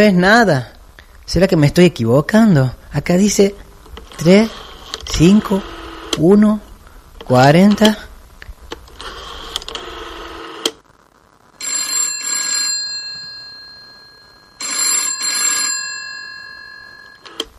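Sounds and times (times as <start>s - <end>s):
speech: 0.0s - 3.6s, 4.2s - 6.7s, 7.3s - 8.1s
telephone bell ringing during a call: 11.6s - 17.5s.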